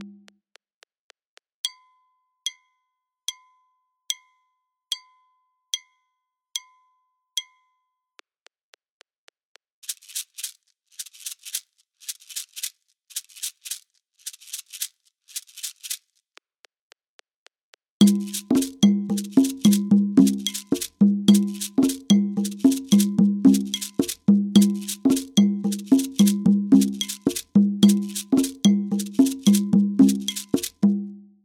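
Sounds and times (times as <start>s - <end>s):
bikutsi music with African rhythms at 110 bpm: 18.0s - 31.2s.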